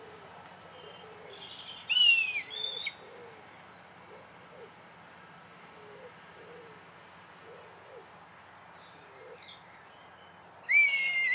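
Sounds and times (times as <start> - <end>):
Red kite whistling call: 1.9 - 2.5, 10.7 - 11.3.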